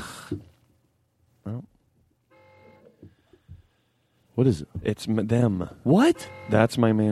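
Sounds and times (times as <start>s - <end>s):
car horn honking: 2.3s - 3.1s, 6.0s - 7.1s
speech: 4.4s - 7.1s.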